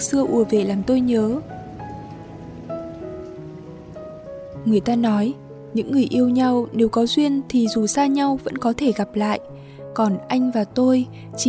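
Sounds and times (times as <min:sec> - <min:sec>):
speech: 0:00.0 - 0:01.6, 0:04.7 - 0:11.4
steady rain pattering on a surface: 0:00.0 - 0:08.5.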